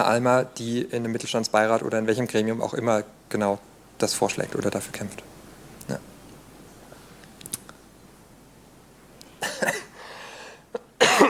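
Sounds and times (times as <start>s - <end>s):
speech: 0.0s - 5.3s, 5.9s - 6.1s
room noise: 0.0s - 11.2s
faint small clicks: 7.2s - 7.8s
person coughing in a short fit: 9.4s - 10.0s, 10.8s - 11.2s.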